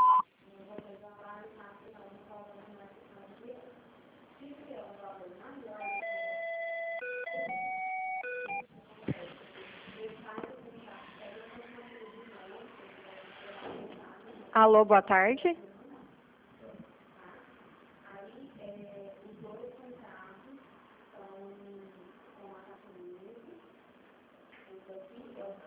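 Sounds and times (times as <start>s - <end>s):
electronic signal tones from an automated phone service: 0.0s - 0.2s, 5.8s - 8.6s
speech: 14.6s - 15.6s.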